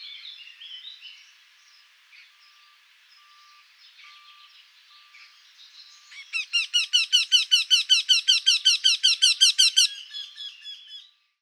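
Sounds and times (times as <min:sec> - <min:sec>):
Eurasian wryneck ringing calls at Marcilly: 0:06.1 - 0:11.1.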